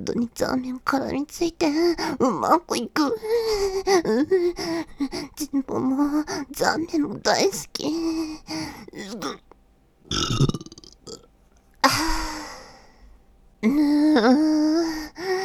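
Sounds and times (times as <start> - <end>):
speech: 0.0 - 9.5, 10.1 - 10.6, 13.6 - 15.3
person burping: 9.0 - 9.4, 10.1 - 11.3.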